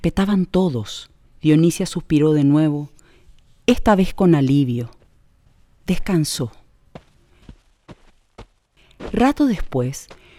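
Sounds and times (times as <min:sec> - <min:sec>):
speech: 0:00.0 - 0:03.0, 0:03.7 - 0:05.0, 0:05.9 - 0:06.6, 0:09.1 - 0:10.2
barefoot footsteps on hard earth: 0:04.9 - 0:05.2, 0:06.8 - 0:10.3.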